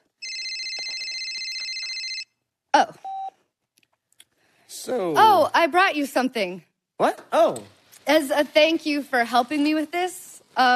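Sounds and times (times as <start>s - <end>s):
phone ringing: 0.2s - 2.4s
speech: 4.9s - 10.7s.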